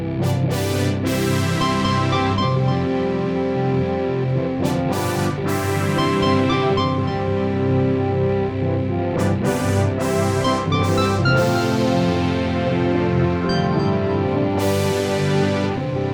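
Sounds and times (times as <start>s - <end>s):
brass instruments: 0.1s - 16.1s.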